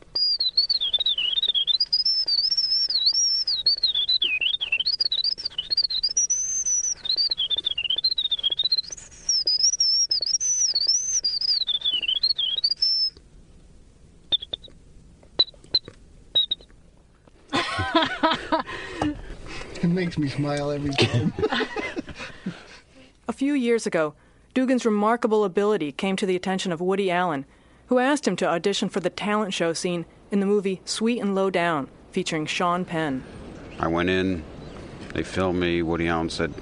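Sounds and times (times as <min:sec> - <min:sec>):
man whistling an imitation of a winter wren's song: 0:00.1 - 0:13.2, 0:14.3 - 0:14.7, 0:15.4 - 0:16.7
laughter: 0:17.5 - 0:19.3, 0:20.8 - 0:22.8
speech: 0:20.0 - 0:21.9, 0:23.4 - 0:34.5, 0:35.1 - 0:36.6.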